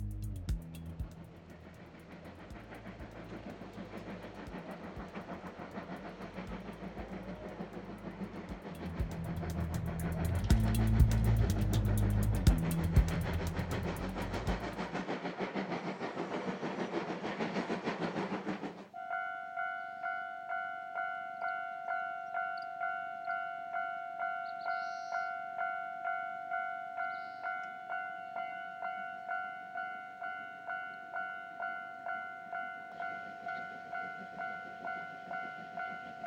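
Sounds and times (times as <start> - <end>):
steam-hauled train rumbling past: 0.0 - 21.6, 22.3 - 36.2.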